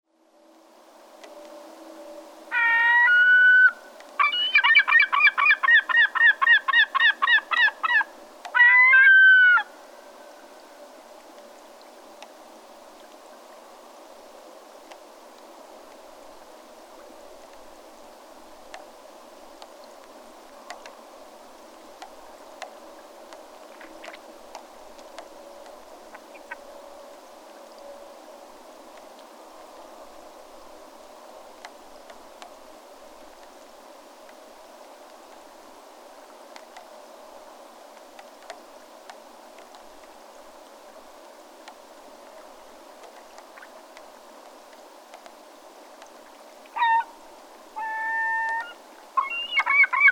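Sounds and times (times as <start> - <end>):
American herring gull: 2.5 - 9.7, 46.8 - 47.1, 47.8 - 50.1.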